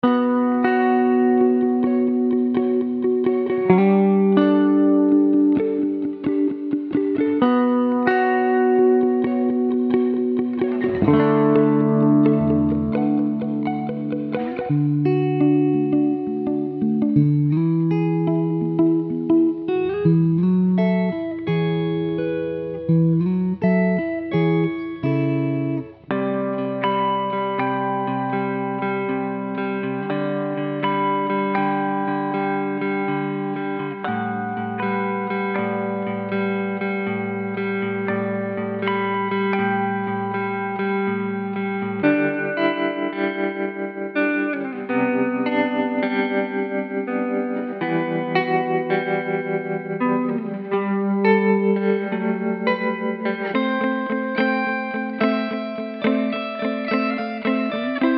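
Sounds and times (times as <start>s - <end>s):
ambient guitars: 0.0s - 58.1s.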